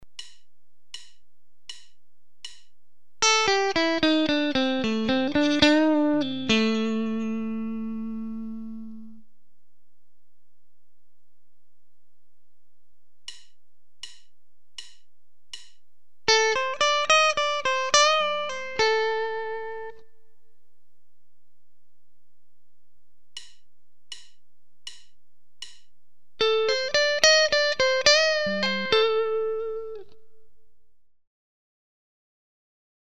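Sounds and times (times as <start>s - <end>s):
blues guitar licks in box positions: 3.2s - 9.2s, 16.3s - 20.0s, 26.4s - 30.3s.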